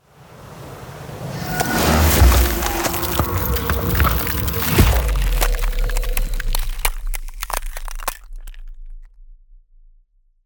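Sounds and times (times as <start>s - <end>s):
ice spell effect: 1.4s - 8.6s.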